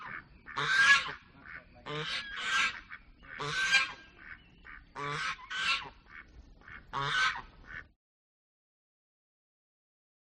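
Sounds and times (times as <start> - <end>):
goose honking: 0.0 - 7.9
geese quacking: 0.0 - 8.0.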